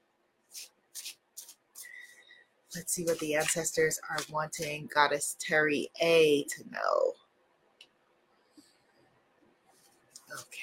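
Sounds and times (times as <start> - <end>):
cards being shuffled: 0.5 - 1.9, 2.8 - 3.6
speech: 2.8 - 7.2.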